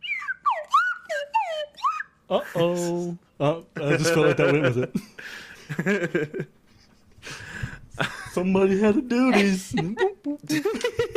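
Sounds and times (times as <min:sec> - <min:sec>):
slide whistle playing a bouncy theme song: 0:00.0 - 0:02.2
speech: 0:02.3 - 0:06.6, 0:08.4 - 0:11.0
laughter: 0:03.8 - 0:06.5, 0:09.4 - 0:11.1.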